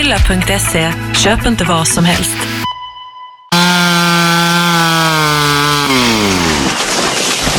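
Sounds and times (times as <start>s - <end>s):
speech: 0.1s - 2.5s
motorized saw cutting into wood: 3.5s - 6.9s.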